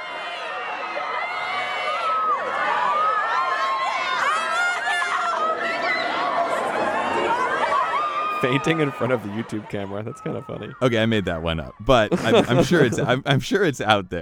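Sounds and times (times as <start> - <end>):
dense crowd of high-pitched teenage girl fans screaming and sobbing: 0.0 - 11.1
scattered cheers and chatter: 0.0 - 13.4
laughter: 8.4 - 14.0
speech: 8.4 - 14.2.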